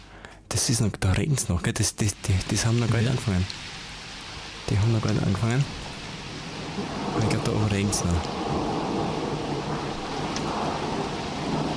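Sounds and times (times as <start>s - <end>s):
heavy rain hissing in a thunderstorm: 0.0s - 11.7s
speech: 0.6s - 3.8s, 4.7s - 5.8s, 6.8s - 8.9s
low rumbling of thunder: 2.4s - 11.7s.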